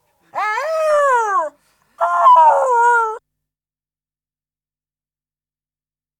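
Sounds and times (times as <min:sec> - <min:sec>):
dog whining and yelping: 0:00.4 - 0:03.2.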